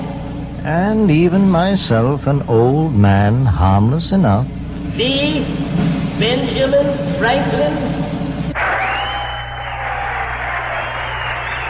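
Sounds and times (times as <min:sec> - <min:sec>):
speech: 0:00.6 - 0:08.0
applause: 0:08.6 - 0:11.6
large crowd cheering: 0:08.6 - 0:11.6
whistles: 0:08.6 - 0:11.6.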